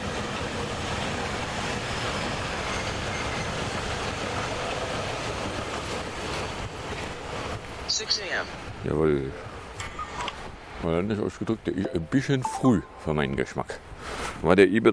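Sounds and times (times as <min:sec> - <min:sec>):
subway train rumbling along rails: 0:00.0 - 0:09.8
speech: 0:08.2 - 0:09.5, 0:10.8 - 0:14.9.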